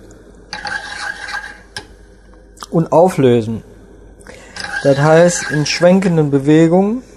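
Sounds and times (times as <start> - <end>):
metal cooking pot pushed scraping across a stovetop: 0.5 - 1.9, 4.5 - 6.1
speech: 2.7 - 3.7, 4.8 - 7.1.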